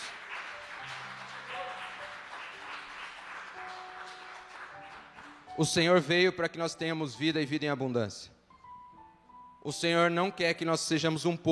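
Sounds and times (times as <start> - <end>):
worship audience clapping in praise: 0.0 - 5.9
speech: 5.6 - 8.4, 9.6 - 11.5.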